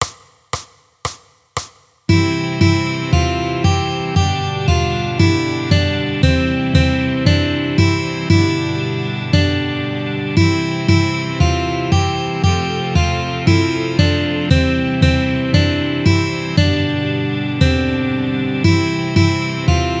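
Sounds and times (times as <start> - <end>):
guitar exercise played fast: 2.1 - 19.9.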